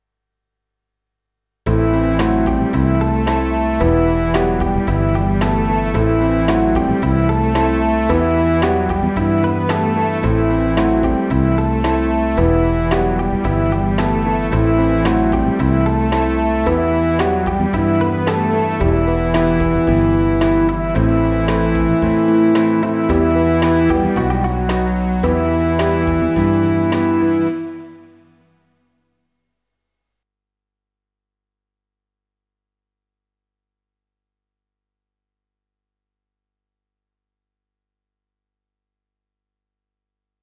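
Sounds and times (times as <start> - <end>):
harp: 1.7 - 28.4
pop ballad horn riff in E minor: 1.7 - 28.6.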